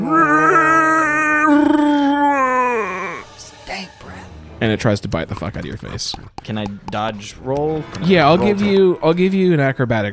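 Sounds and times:
person imitating a Wookiee's moaning roar: 0.0 - 3.4
speech: 4.6 - 10.1.

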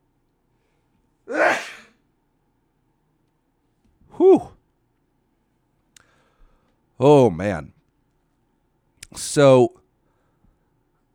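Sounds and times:
person sneezing: 1.3 - 1.9
speech: 4.2 - 4.6, 7.0 - 7.8, 9.1 - 9.8.

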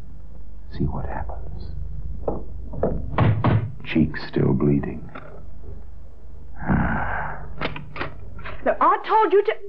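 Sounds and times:
low steady hum: 0.0 - 9.6
speech: 0.8 - 2.9, 3.9 - 5.2, 8.6 - 9.6
knocking on a door: 2.2 - 3.8.

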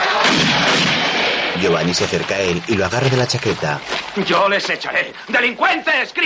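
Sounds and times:
man firing a shotgun: 0.2 - 1.6
speech: 1.6 - 6.2.

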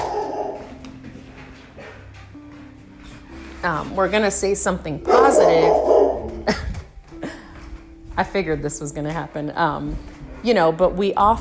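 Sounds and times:
dog barking and whining: 0.0 - 0.8, 5.0 - 6.5
speech: 3.6 - 6.6, 8.2 - 11.3.

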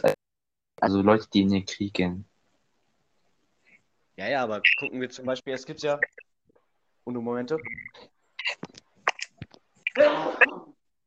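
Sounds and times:
speech: 0.0 - 0.2, 0.8 - 2.3, 4.2 - 6.3, 7.0 - 8.8, 10.0 - 10.7
loud sneeze: 9.9 - 10.8.

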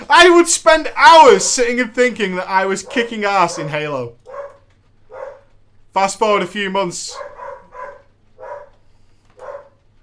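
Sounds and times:
speech: 0.1 - 4.2, 6.0 - 7.3
dog barking: 2.8 - 5.6, 7.1 - 8.8, 9.4 - 9.9.

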